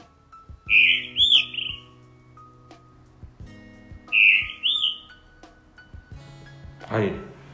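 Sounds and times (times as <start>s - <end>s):
blue rock thrush singing from a church roof: 0.6s - 2.1s, 4.1s - 5.4s
speech: 6.9s - 7.3s.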